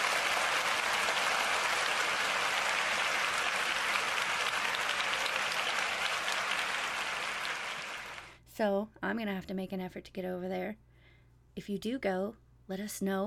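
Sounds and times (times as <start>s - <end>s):
crowd applauding: 0.0s - 8.4s
speech: 8.6s - 10.9s, 11.6s - 13.2s.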